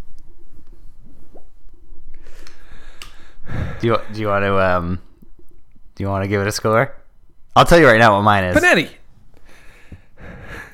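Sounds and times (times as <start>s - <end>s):
heavy labored breathing: 2.2s - 4.2s, 9.4s - 10.7s
speech: 3.8s - 5.1s, 6.0s - 7.0s, 7.6s - 9.0s.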